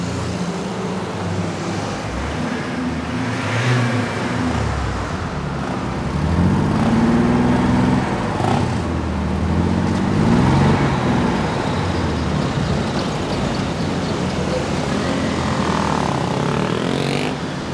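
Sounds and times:
city traffic rumble: 0.0 - 17.7
road noise: 0.0 - 17.7
vehicle engines idling and pulling away: 11.4 - 17.7.

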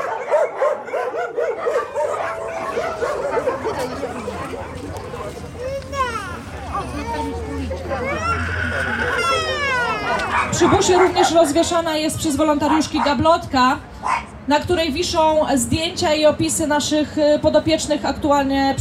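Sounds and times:
many dogs in animal shelter kennel boxes barking, yipping and whining: 0.0 - 5.4, 8.7 - 11.8, 12.6 - 13.3, 14.0 - 14.4
murmured talk: 0.0 - 18.7
speech: 10.6 - 13.9, 14.5 - 18.7.

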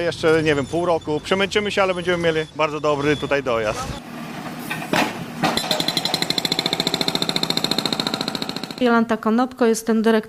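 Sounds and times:
speech: 0.0 - 4.1, 8.8 - 10.2
jackhammer pounding at road construction and repair site: 4.7 - 9.0.

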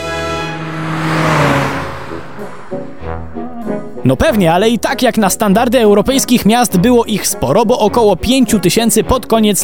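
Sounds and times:
old car engine revving: 0.0 - 4.8
speech: 4.0 - 9.6.

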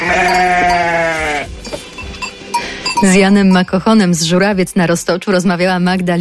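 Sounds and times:
sheep bleating: 0.0 - 1.5
farmyard noise: 0.0 - 4.4
speech: 3.0 - 6.1.

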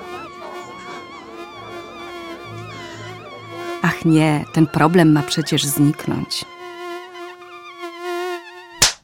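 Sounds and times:
mosquito whining: 0.0 - 8.8
speech: 3.8 - 6.6
sharp smack: 8.8 - 9.0.

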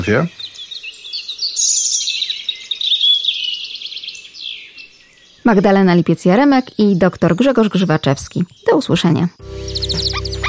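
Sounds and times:
speech: 0.0 - 0.4, 5.5 - 9.8
European robin singing: 0.0 - 10.4.

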